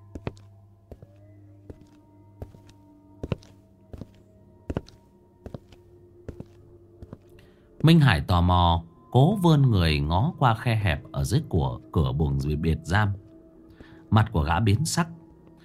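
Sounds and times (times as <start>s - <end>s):
prison guard's hurried footsteps: 0.1s - 7.3s
speech: 7.8s - 13.2s, 14.1s - 15.2s.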